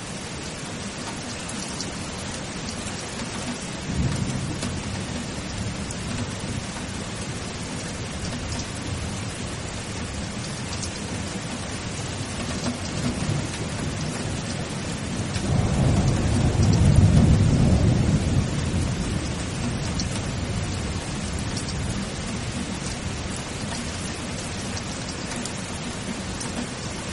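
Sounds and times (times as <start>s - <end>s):
steady dense rainfall: 0.0s - 27.1s.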